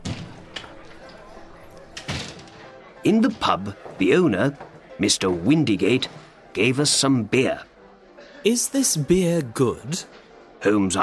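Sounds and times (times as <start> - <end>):
pub door opening: 0.0 - 4.8
speech: 3.0 - 7.7, 8.4 - 11.0.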